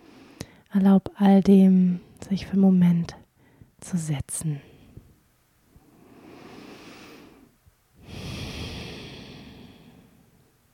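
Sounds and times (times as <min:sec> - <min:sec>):
deep breathing in and out during a guided meditation: 0:00.0 - 0:00.7, 0:05.8 - 0:10.5
speech: 0:00.7 - 0:03.2, 0:03.8 - 0:04.7.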